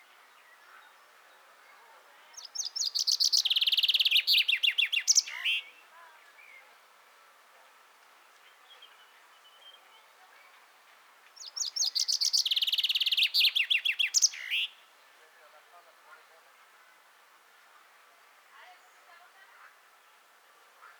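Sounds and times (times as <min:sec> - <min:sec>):
Fringilla coelebs common chaffinch song: 0:00.0 - 0:06.7, 0:11.4 - 0:14.9.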